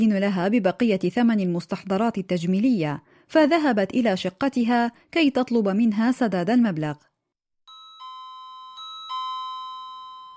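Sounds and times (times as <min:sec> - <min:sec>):
speech: 0:00.0 - 0:07.1
doorbell chiming with bell-like tones: 0:07.7 - 0:10.3.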